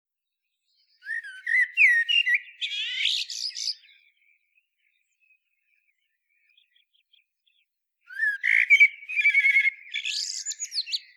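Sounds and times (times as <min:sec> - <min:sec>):
common blackbird Turdus merula song: 0:00.2 - 0:11.1.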